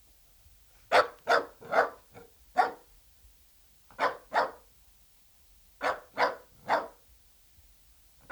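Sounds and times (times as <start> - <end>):
dachshund barking: 0.9 - 2.9, 3.9 - 4.7, 5.8 - 7.0.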